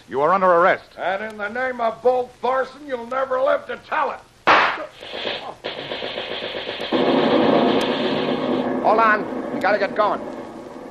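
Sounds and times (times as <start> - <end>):
speech: 0.1 - 6.2, 8.8 - 10.3
ammunition magazine explosion blast: 4.5 - 10.8
rumbling and crackling detonations: 4.5 - 10.8.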